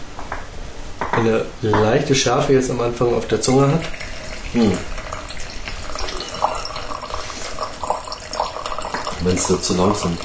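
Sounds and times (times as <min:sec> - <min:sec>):
speech: 0:01.2 - 0:05.0, 0:09.2 - 0:10.2
wine trickling out of a pouring decanter: 0:03.4 - 0:10.2.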